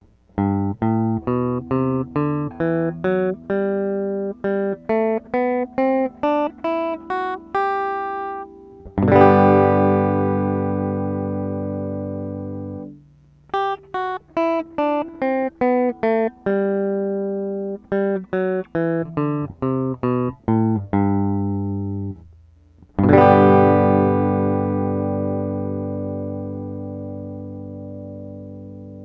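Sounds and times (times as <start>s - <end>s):
guitars in G Major with tremolo pedal bypassed: 0.1s - 29.0s.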